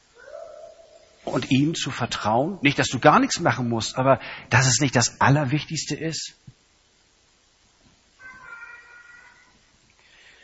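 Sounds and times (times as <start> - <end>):
quiet hiss: 0.0 - 10.4
speech: 1.3 - 6.5
pet cat meowing: 8.2 - 9.6.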